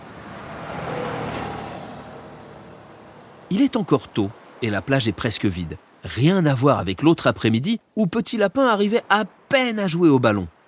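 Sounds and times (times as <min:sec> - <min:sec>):
car driving away: 0:00.0 - 0:03.5
speech: 0:03.5 - 0:10.5.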